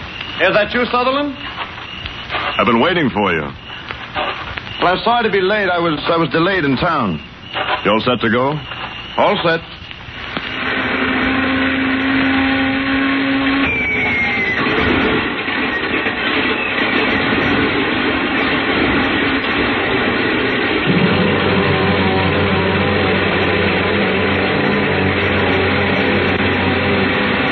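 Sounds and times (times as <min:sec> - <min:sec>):
speech: 0:00.4 - 0:01.5, 0:02.6 - 0:03.6, 0:04.8 - 0:09.8
airplane engine warming up for takeoff at an airport at night: 0:10.2 - 0:27.4.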